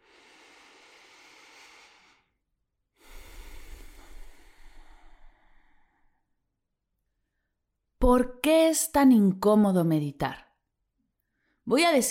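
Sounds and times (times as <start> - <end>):
deep breath in and out: 0.0 - 6.4
speech: 8.0 - 10.4, 11.7 - 12.0.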